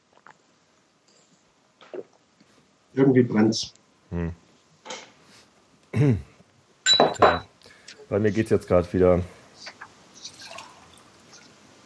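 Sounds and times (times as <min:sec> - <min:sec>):
faint hiss: 0:00.0 - 0:11.8
speech: 0:03.0 - 0:04.4, 0:06.0 - 0:06.3, 0:08.1 - 0:09.7
water poured into a glass: 0:10.2 - 0:11.5
bright water drips: 0:10.2 - 0:11.8.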